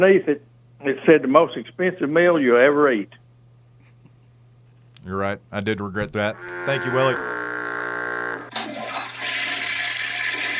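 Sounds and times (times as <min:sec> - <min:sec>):
speech: 0:00.0 - 0:03.2, 0:05.0 - 0:07.5
brief humming tone: 0:06.3 - 0:08.5
toilet flush with swirling water: 0:08.5 - 0:10.5.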